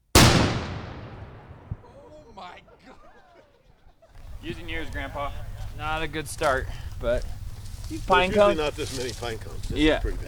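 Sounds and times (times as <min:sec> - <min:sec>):
mini cannon firing to start tournament: 0:00.1 - 0:02.3
laughter: 0:01.7 - 0:05.8
faint voices murmuring: 0:01.7 - 0:10.2
speech: 0:04.4 - 0:10.2.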